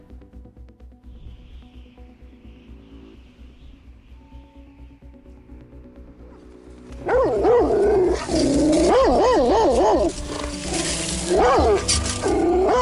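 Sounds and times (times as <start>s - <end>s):
dogs growling and snarling: 7.0s - 12.7s.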